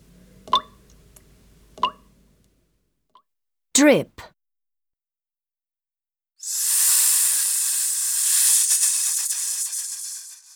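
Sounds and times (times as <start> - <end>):
speech: 3.8 - 4.3
loud steady high-pitched hiss: 6.4 - 10.5.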